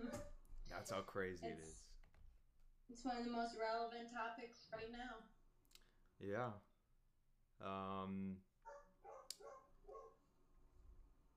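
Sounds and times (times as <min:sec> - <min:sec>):
speech: 0:00.1 - 0:01.9, 0:02.9 - 0:05.4, 0:06.2 - 0:06.7, 0:07.6 - 0:08.5
dog barking: 0:08.6 - 0:10.2.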